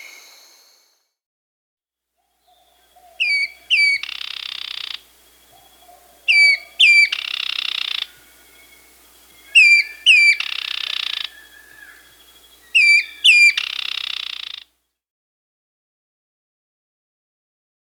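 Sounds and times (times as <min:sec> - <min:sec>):
Striped Woodhaunter Hyloctistes subulatus vocalising in Peru: 0:02.5 - 0:14.6.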